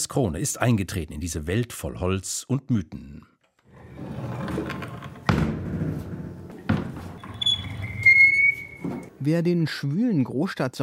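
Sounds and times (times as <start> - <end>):
speech: 0.0 - 3.3, 9.2 - 10.8
thin high-pitched creak of wooden door hinge: 3.8 - 9.2
heavy thuds of wooden door: 5.2 - 7.2.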